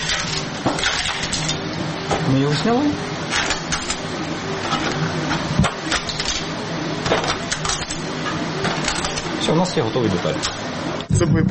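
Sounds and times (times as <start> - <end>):
3D printer stepper motors whining: 0.0 - 11.4
speech: 2.3 - 3.1, 9.5 - 11.4.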